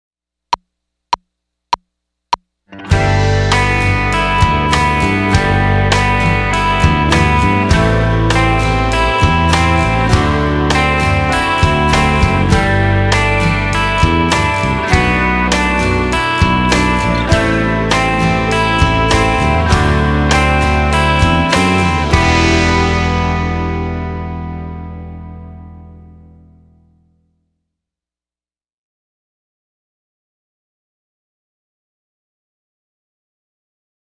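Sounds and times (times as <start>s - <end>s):
chord tones: 2.7s - 26.4s.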